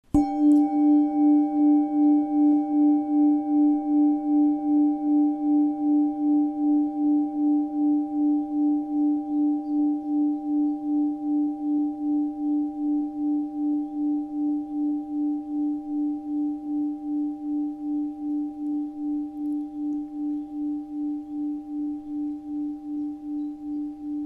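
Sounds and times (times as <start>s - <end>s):
planet singing bowl: 0.0s - 24.2s.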